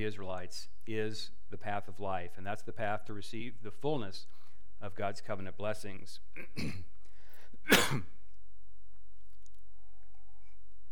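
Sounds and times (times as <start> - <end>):
speech: 0.0 - 6.9, 7.7 - 8.2
short dry cough: 6.4 - 6.9, 7.6 - 8.2
faint throat noise: 6.4 - 7.0.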